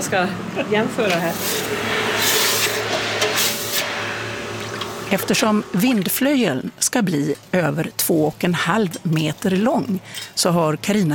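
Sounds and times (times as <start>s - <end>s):
steady low workshop hum: 0.0s - 10.7s
speech: 0.1s - 3.5s, 5.1s - 11.1s
surges of steam: 1.1s - 5.6s
hot forged metal hissing and sizzling in a bucket of water: 1.1s - 5.7s.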